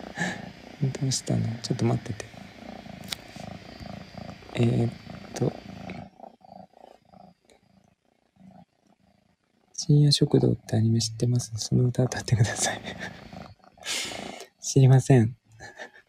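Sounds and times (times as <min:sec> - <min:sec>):
voice murmuring: 0:00.0 - 0:02.4, 0:04.5 - 0:06.0, 0:10.4 - 0:14.5
cat purring: 0:00.0 - 0:16.0
speech: 0:01.0 - 0:02.4, 0:04.6 - 0:05.7, 0:09.9 - 0:13.2, 0:14.8 - 0:15.4
laughter: 0:12.6 - 0:13.2, 0:15.6 - 0:16.0.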